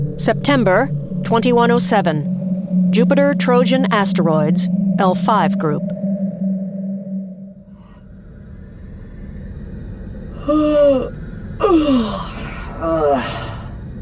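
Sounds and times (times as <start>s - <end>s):
speech: 0.2s - 6.0s
woman yawning inside a spacesuit: 10.4s - 13.7s.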